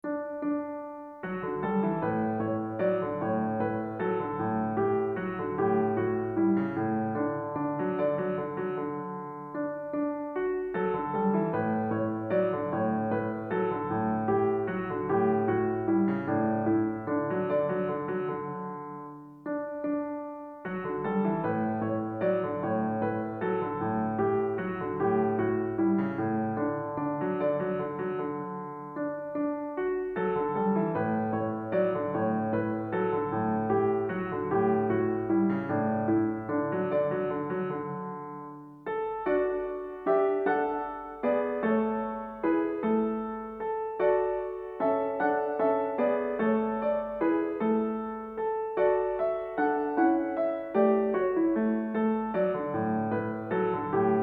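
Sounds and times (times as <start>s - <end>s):
unknown Irish song arranged for piano: 0.0s - 54.2s.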